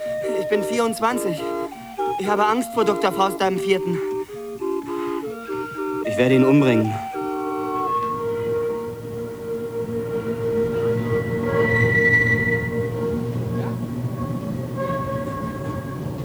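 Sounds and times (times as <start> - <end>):
tram whining tones: 0.0 - 16.2
yellow tram running on rails: 0.0 - 16.2
speech: 0.4 - 4.1, 6.2 - 7.0.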